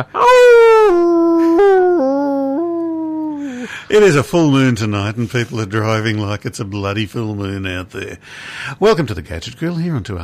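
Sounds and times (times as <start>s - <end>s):
speech: 0.0s - 1.2s, 3.9s - 10.2s
person howling like a wolf: 0.1s - 3.6s.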